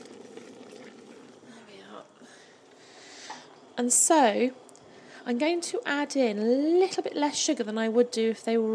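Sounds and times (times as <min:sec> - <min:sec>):
thick jam bubbling in a big pan: 0:00.0 - 0:03.7
speech: 0:03.8 - 0:04.6, 0:05.3 - 0:08.7.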